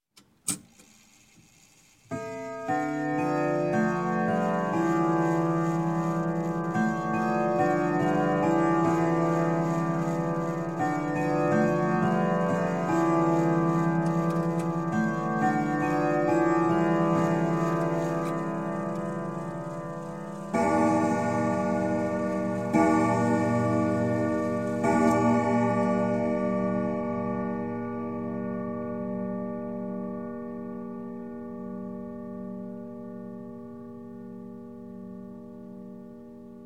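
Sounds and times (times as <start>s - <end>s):
grandfather clock chime: 2.1s - 36.6s
grandfather clock striking: 5.9s - 29.0s.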